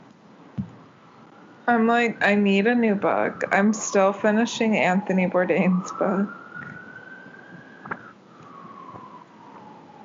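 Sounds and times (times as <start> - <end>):
faint knocks: 0.6 - 0.8
police car siren wailing: 0.7 - 10.0
speech: 1.7 - 6.4.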